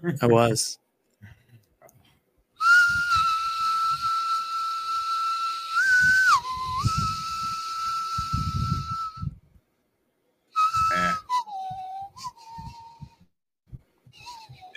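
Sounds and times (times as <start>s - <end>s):
speech: 0.0s - 0.8s
person whistling a TV theme melody: 2.6s - 9.4s, 10.6s - 13.3s, 14.1s - 14.7s.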